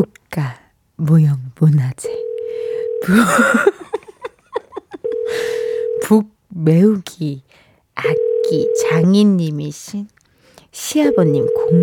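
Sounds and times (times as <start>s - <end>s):
speech: 0.0s - 2.3s, 3.0s - 3.8s, 6.1s - 10.2s, 10.8s - 11.8s
phone ringback tone: 2.1s - 3.6s, 5.0s - 6.1s, 8.0s - 9.1s, 11.0s - 11.8s
laughter: 3.1s - 5.4s.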